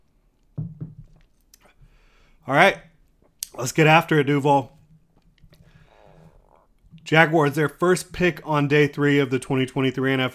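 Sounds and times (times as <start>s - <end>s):
speech: 2.4s - 2.9s, 3.6s - 4.8s, 7.1s - 10.3s
person sipping a drink: 5.5s - 6.8s.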